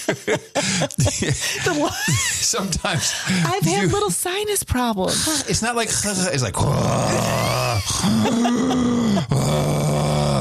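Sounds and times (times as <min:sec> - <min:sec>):
laughter: 0:00.0 - 0:04.0, 0:07.1 - 0:09.5
speech: 0:00.1 - 0:09.8
voice imitating snoring with rasping drones: 0:06.6 - 0:10.4.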